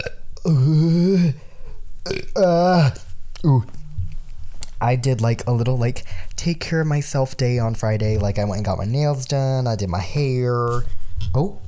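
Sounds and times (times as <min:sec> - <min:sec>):
voiced burps: 0:00.0 - 0:01.4, 0:02.0 - 0:03.6
speech: 0:00.5 - 0:01.3, 0:04.9 - 0:11.6.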